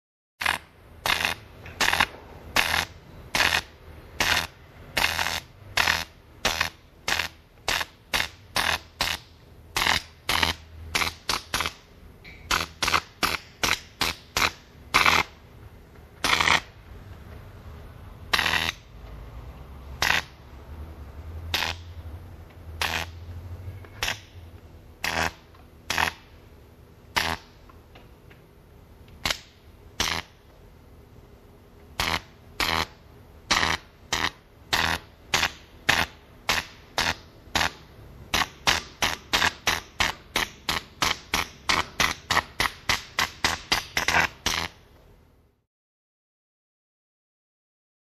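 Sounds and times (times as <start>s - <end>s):
high voltage discharge: 0.4s - 15.4s, 16.2s - 16.8s, 18.3s - 18.9s, 19.9s - 20.4s, 21.5s - 22.0s, 22.8s - 23.2s, 24.0s - 24.4s, 25.0s - 26.4s, 27.1s - 27.6s, 29.2s - 30.4s, 32.0s - 44.8s.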